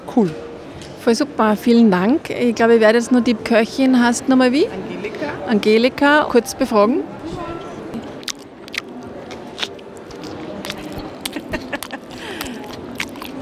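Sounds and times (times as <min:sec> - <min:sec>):
speech: 0:00.1 - 0:07.4
steady murmur: 0:02.6 - 0:13.4
wet smacking and crunchy chewing of wraps: 0:07.9 - 0:13.4.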